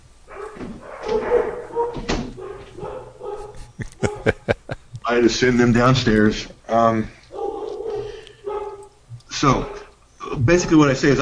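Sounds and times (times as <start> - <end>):
dog barking and yipping: 0.3 - 4.6, 7.3 - 9.9
laughter: 3.4 - 5.2
speech: 5.2 - 7.2, 9.4 - 9.8, 10.4 - 11.1.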